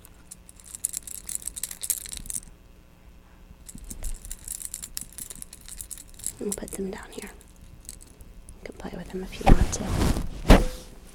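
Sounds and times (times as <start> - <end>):
bunch of keys rattling and jingling: 0.0 - 2.5, 3.7 - 8.2
speech: 6.4 - 7.4, 8.6 - 10.3.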